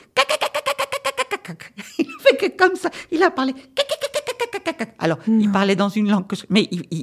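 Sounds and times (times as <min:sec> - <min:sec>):
man mimicking cockatoo squawks: 0:00.0 - 0:01.8, 0:03.7 - 0:05.0
speech: 0:01.5 - 0:03.8, 0:04.6 - 0:07.0.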